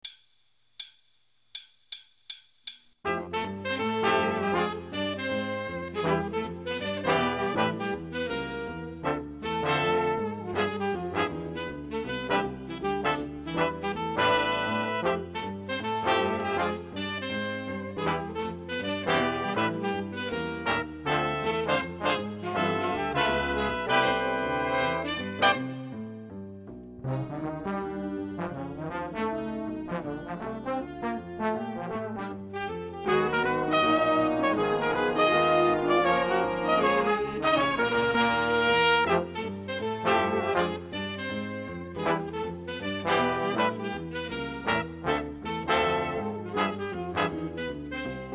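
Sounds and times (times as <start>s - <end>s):
drums: 0.0s - 3.0s
piano: 3.0s - 48.3s.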